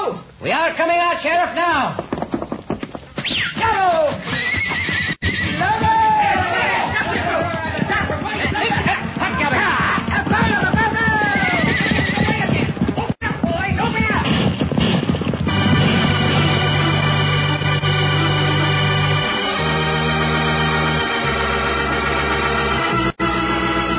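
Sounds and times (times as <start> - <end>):
speech: 0.1 - 2.1
galloping horse hooves: 1.2 - 23.9
horses whinnying and neighing: 2.0 - 17.5
excited voices shouting: 5.4 - 13.4.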